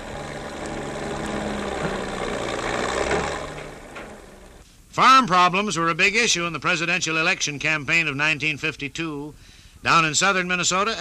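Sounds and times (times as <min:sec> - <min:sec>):
early farm tractor engine chugging: 0:00.0 - 0:04.6
speech: 0:05.0 - 0:10.9.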